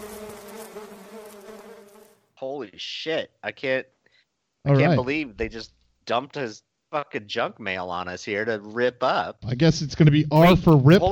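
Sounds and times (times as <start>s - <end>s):
bee buzzing: 0.0s - 2.1s
speech: 2.4s - 4.0s, 4.6s - 11.0s.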